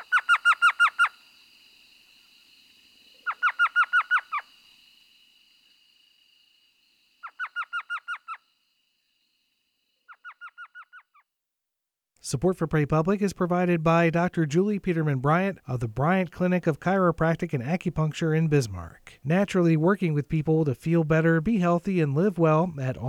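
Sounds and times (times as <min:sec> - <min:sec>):
tiny desert owl giving high yelping notes: 0:00.0 - 0:01.2, 0:03.2 - 0:04.5, 0:07.2 - 0:08.4, 0:10.1 - 0:11.2
speech: 0:12.2 - 0:23.0.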